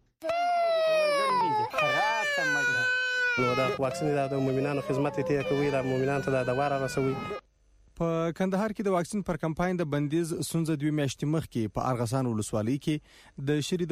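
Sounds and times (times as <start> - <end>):
child crying: 0.2 - 7.4
speech: 3.4 - 7.4, 8.0 - 13.9.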